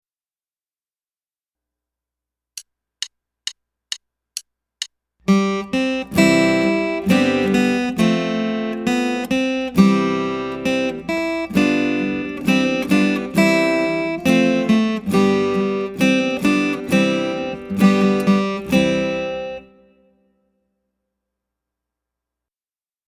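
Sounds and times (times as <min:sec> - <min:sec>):
two-note pickup phrase: 0:05.3 - 0:19.8.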